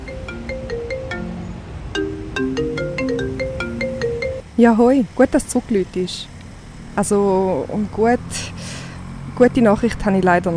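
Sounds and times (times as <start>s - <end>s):
mobile phone ringing with a bright electronic melody: 0.0s - 4.4s
speech: 4.6s - 6.3s, 7.0s - 8.5s, 9.4s - 10.5s.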